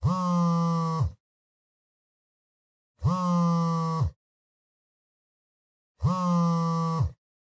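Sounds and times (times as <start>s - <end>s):
cell phone vibrating on a cushion: 0.0s - 1.2s, 3.0s - 4.2s, 6.0s - 7.2s.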